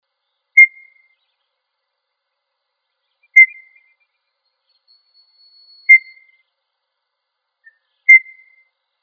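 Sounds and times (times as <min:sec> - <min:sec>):
quail calling with short clear whistles: 0:00.6 - 0:01.2, 0:03.2 - 0:04.0, 0:05.0 - 0:06.4, 0:07.6 - 0:08.6.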